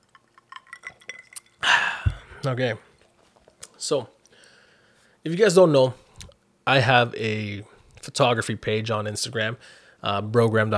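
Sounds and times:
drinking glasses clinking during a New Year toast: 0.1 - 2.4
breathy rush of noise: 1.6 - 2.4
speech: 2.4 - 2.9, 3.8 - 4.2, 5.2 - 6.0, 6.6 - 10.7.

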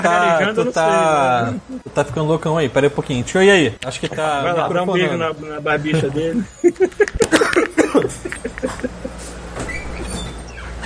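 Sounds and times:
laughter: 0.0 - 0.8, 5.8 - 9.4
speech: 0.0 - 9.0
door opening or closing: 9.5 - 10.8.

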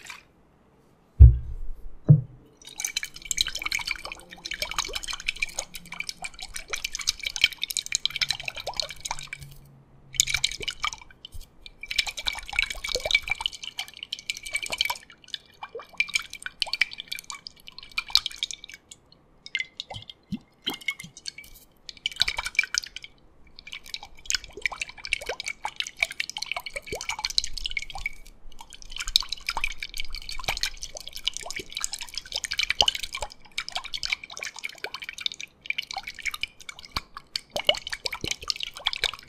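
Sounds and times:
low knocks: 1.2 - 2.5
water, oils and thick creams being squished and dripped: 2.6 - 39.2.

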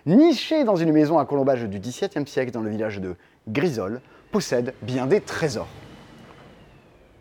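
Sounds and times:
speech: 0.0 - 5.8
garbage truck rumbling by in the street: 3.7 - 7.1.

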